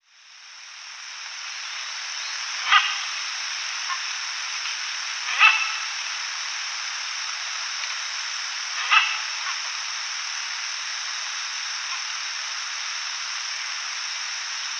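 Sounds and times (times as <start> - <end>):
constant background hiss: 0.0 - 14.7
knobbed hornbill calling: 2.2 - 4.3, 5.2 - 6.3, 8.7 - 9.8.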